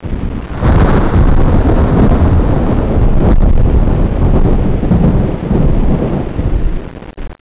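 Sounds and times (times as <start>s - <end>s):
thunder: 0.0s - 7.0s.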